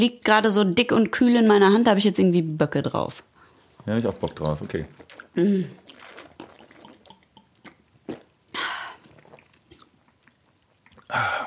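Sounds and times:
speech: 0.0 - 3.3, 3.9 - 5.8
person gulping beer from a cool bottle: 4.1 - 11.4
breathy exhales after drinking beer: 11.1 - 11.4.

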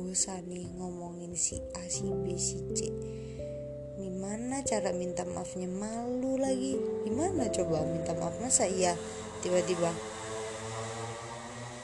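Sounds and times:
speech: 0.0 - 10.2
motorcycle engine droning at night: 6.0 - 11.8.

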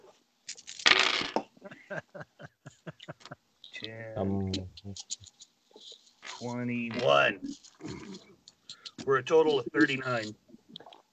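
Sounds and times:
dice rattling across a hard tabletop: 0.5 - 1.4
laughter: 1.6 - 3.4
speech: 5.0 - 5.3, 6.4 - 8.2, 9.0 - 10.4.

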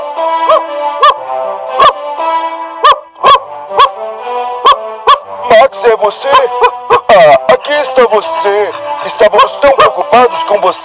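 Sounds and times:
dog barking in greeting: 0.5 - 1.2, 2.8 - 4.0, 4.6 - 5.2, 6.3 - 7.2
speech: 5.6 - 10.8.

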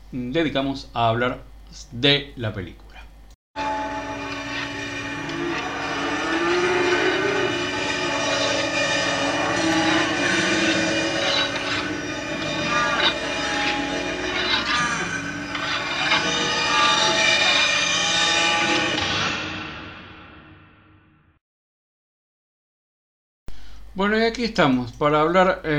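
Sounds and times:
speech: 0.1 - 2.8, 24.1 - 25.7
layered metallic tones: 3.6 - 19.4
dense grinding industrial drone: 3.6 - 20.4
ominous horror film score: 3.6 - 21.4.

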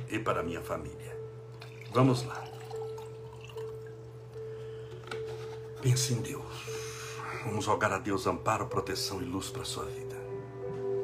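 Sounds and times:
steady low electrical hum: 0.0 - 11.0
speech: 0.1 - 1.2, 1.9 - 2.6, 5.8 - 10.1
water being poured into a glass: 1.5 - 4.2.

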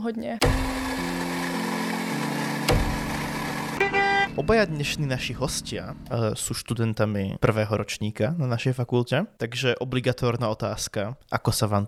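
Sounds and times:
speech: 0.0 - 1.2, 4.3 - 11.8
sharp knock: 0.4 - 1.8, 2.6 - 3.8
car horns honking on a busy street: 2.6 - 4.8
higher, brighter horn: 3.8 - 4.8.

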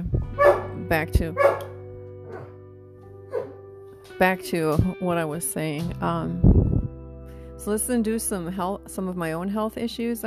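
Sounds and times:
dog barking: 0.4 - 0.8, 1.4 - 2.6, 3.3 - 3.6
dog yipping: 0.4 - 0.8, 1.4 - 1.7, 2.3 - 2.5, 3.3 - 3.6
speech: 0.9 - 1.7, 4.2 - 6.7, 7.6 - 10.2.

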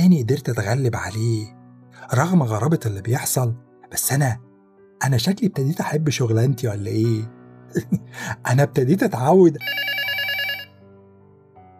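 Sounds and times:
speech: 0.1 - 9.9
landline telephone ringing with a trilling electronic bell: 9.6 - 10.8.

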